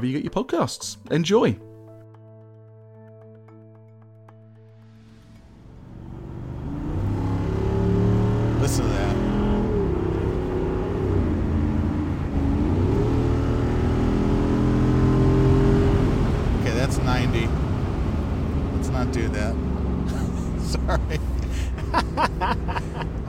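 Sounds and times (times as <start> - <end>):
speech: 0.0 - 1.7
softly sprung car engine revving while accelerating hard: 5.2 - 23.2
people chuckling: 20.1 - 23.2.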